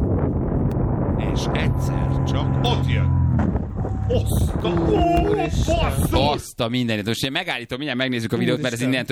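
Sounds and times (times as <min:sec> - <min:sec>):
wind buffeting a microphone during paraglider flight: 0:00.0 - 0:06.6
speech: 0:01.4 - 0:09.1.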